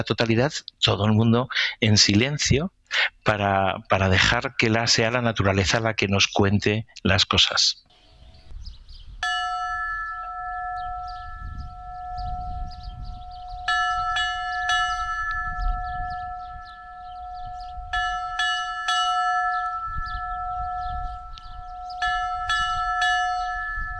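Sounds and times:
speech: 0:00.0 - 0:07.8
church bells ringing composed peals portraying an eclipse: 0:09.2 - 0:23.9.

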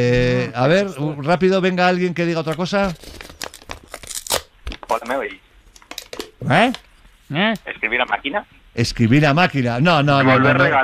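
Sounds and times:
speech: 0:00.0 - 0:03.2, 0:06.4 - 0:10.8
paper envelope being torn open to remove a letter: 0:02.8 - 0:05.0.

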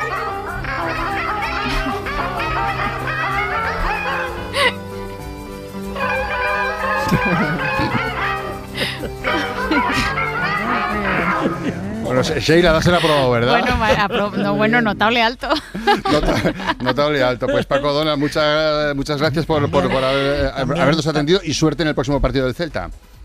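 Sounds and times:
laughter: 0:00.0 - 0:04.8, 0:06.0 - 0:18.7, 0:19.3 - 0:21.4
seagulls calling: 0:00.0 - 0:04.8, 0:05.9 - 0:11.9
symphony orchestra music: 0:00.0 - 0:12.0
speech: 0:12.2 - 0:23.1.

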